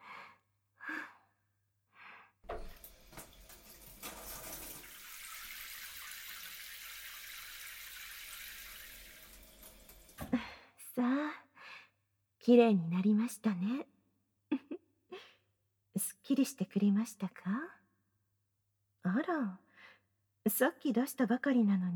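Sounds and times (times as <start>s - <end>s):
water running to rinse off soap foam: 2.5s - 10.4s
speech: 12.4s - 13.9s, 16.3s - 17.7s, 19.2s - 19.6s, 20.5s - 21.9s.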